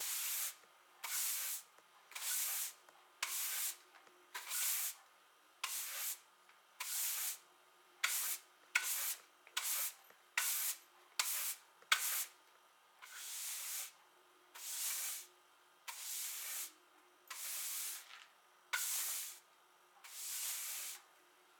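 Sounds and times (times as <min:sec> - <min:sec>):
broom sweeping: 0:00.0 - 0:03.8, 0:04.4 - 0:05.0, 0:05.6 - 0:06.2, 0:06.8 - 0:07.4, 0:08.0 - 0:12.4, 0:13.0 - 0:14.0, 0:14.6 - 0:15.3, 0:15.9 - 0:19.4, 0:20.0 - 0:21.1.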